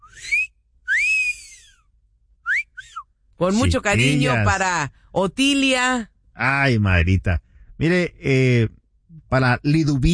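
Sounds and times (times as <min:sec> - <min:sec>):
person whistling flirtatious wolf-whistle: 0:00.0 - 0:01.8, 0:02.4 - 0:03.1
speech: 0:03.4 - 0:10.1.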